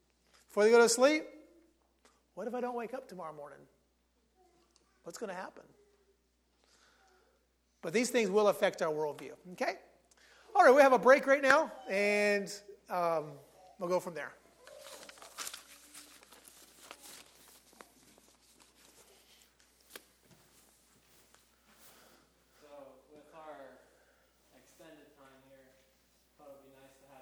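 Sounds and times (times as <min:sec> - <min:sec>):
speech: 0:00.5 - 0:01.3, 0:02.4 - 0:03.8, 0:05.0 - 0:05.8, 0:07.8 - 0:09.9, 0:10.5 - 0:14.4
sheets of paper rustling as they are passed around a room: 0:14.4 - 0:22.3.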